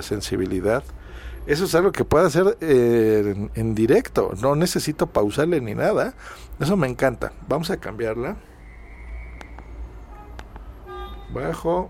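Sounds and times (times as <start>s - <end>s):
speech: 0.0s - 8.5s, 11.3s - 11.8s
street traffic heard through an office window: 0.0s - 11.8s
car horn toot: 9.3s - 11.8s.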